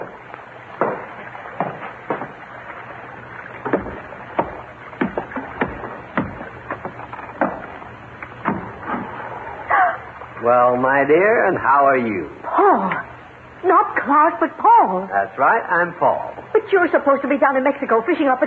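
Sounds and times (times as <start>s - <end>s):
small boat bumping and knocking against a hull while tying up alongside: 0.0s - 9.3s
low steady rumble of water: 0.0s - 18.4s
hollow wooden thuds and creaks: 3.6s - 9.2s
speech: 10.5s - 18.4s.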